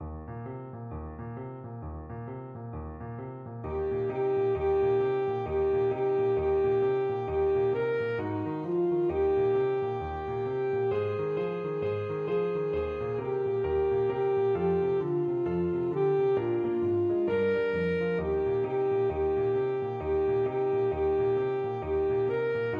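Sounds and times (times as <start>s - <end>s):
boogie played on alto saxophone: 3.8s - 22.7s.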